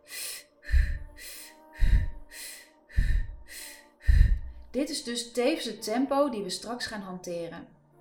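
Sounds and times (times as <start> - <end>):
fast breathing in a breathing exercise: 0.0 - 4.7
speech: 4.7 - 7.8.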